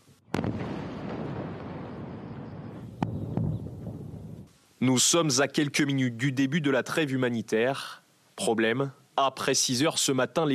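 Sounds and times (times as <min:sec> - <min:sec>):
heavy blast with long rolling rumble: 0:00.3 - 0:04.5
speech: 0:04.8 - 0:10.5.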